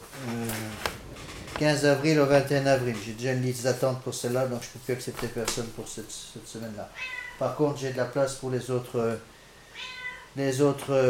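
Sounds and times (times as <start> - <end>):
speech: 1.6 - 11.0
cat meowing: 6.9 - 7.6, 9.7 - 10.4.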